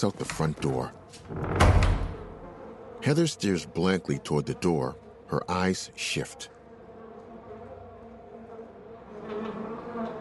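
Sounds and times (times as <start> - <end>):
speech: 0.0 - 2.0, 3.0 - 6.6
wasps buzzing against a glass door panel above a kitchen door: 2.2 - 4.8, 6.6 - 10.1.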